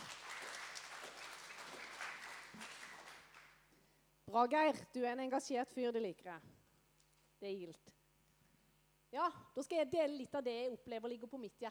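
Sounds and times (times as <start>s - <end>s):
audience clapping: 0.0s - 3.7s
speech: 4.3s - 6.6s, 7.4s - 8.0s, 9.1s - 11.6s.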